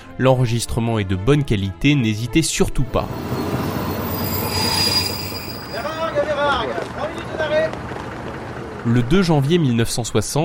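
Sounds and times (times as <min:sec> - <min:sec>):
speech: 0:00.2 - 0:03.6, 0:08.8 - 0:10.4
train rumbling through a railway station: 0:02.8 - 0:09.6
train wheels letting out high wavering metallic squeals: 0:02.9 - 0:06.6.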